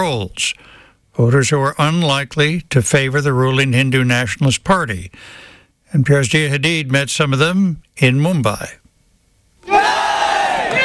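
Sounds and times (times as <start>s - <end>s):
speech: 0.0s - 8.8s
large protest crowd chanting a slogan: 9.6s - 10.8s.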